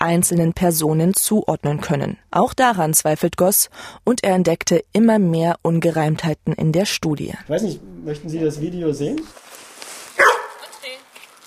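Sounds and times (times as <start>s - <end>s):
speech: 0.0s - 9.4s
mantrailing dog yapping at a man in a scent experiment: 10.2s - 10.8s.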